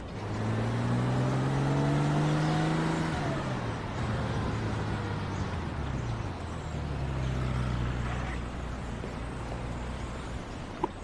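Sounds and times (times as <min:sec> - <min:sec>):
car engine revving through gear shifts and driving off: 0:00.0 - 0:11.0.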